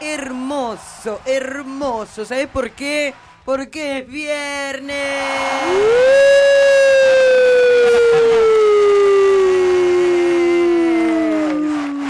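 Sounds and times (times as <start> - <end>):
speech: 0.7 - 6.5
person imitating a siren with a long downward wail: 5.6 - 12.0.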